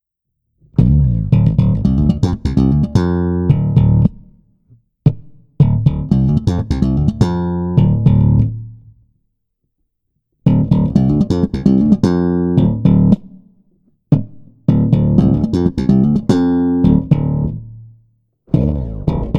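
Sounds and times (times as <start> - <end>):
slap bass: 0.6 - 4.4, 5.6 - 9.0, 10.4 - 13.3, 14.1 - 17.8, 18.5 - 19.3.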